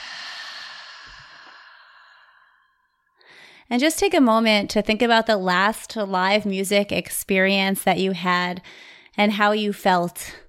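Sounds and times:
slow exhale through the mouth during a guided breathing exercise: 0:00.0 - 0:03.7
speech: 0:03.7 - 0:10.4.

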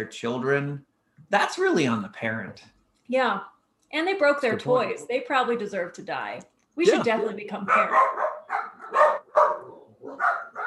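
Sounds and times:
speech: 0:00.0 - 0:08.4
dog barking: 0:07.6 - 0:10.6.

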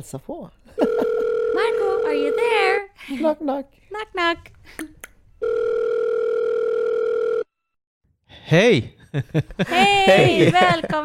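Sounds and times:
speech: 0:00.0 - 0:01.0, 0:01.6 - 0:05.0, 0:08.5 - 0:11.0
long electronic outgoing phone call ringing tone: 0:00.8 - 0:02.8, 0:05.4 - 0:07.6
laughter: 0:09.0 - 0:11.0.

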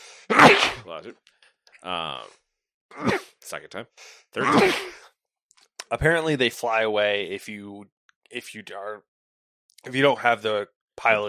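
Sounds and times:
person sneezing: 0:00.3 - 0:00.8, 0:02.9 - 0:03.4, 0:04.4 - 0:05.1
speech: 0:00.9 - 0:05.1, 0:05.9 - 0:09.1, 0:09.8 - 0:11.2.

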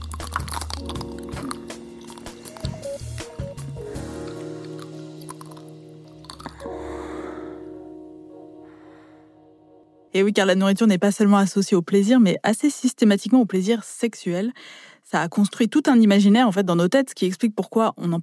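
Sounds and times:
crackly bites into a chocolate-coated ice cream bar: 0:00.0 - 0:06.6
wet chewing and squishing: 0:00.0 - 0:06.7
sustained musical tone: 0:00.7 - 0:10.2
speech: 0:10.2 - 0:18.2.

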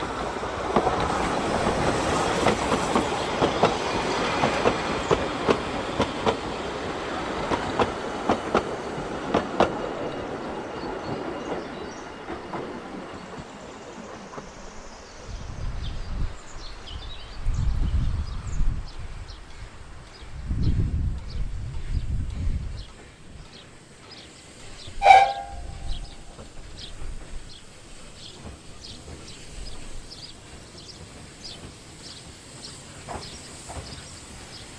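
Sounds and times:
train on a small railway rumbling past: 0:00.0 - 0:34.7
short sharp ringing sound: 0:25.0 - 0:26.1.

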